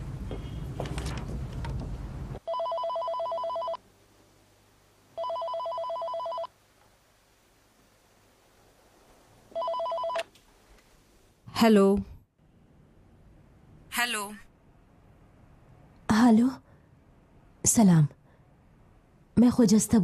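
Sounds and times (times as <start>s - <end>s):
telephone ringing on an outgoing call: 2.4s - 3.8s, 5.2s - 6.6s, 9.5s - 10.3s
speech: 11.6s - 12.1s, 14.1s - 14.5s, 16.3s - 16.6s, 17.8s - 18.2s, 19.4s - 20.0s.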